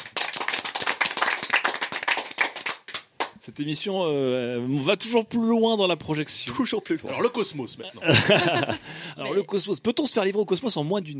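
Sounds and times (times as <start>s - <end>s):
small group applauding with hand claps: 0.0s - 3.4s
speech: 3.5s - 11.1s
laughter: 7.9s - 9.3s.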